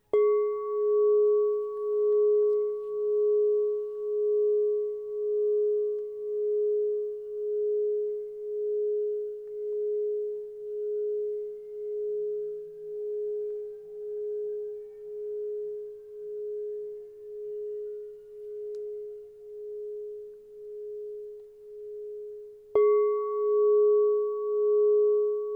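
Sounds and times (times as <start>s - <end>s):
6.5 inch crystal bowl tone in G sharp: 0.0s - 25.5s.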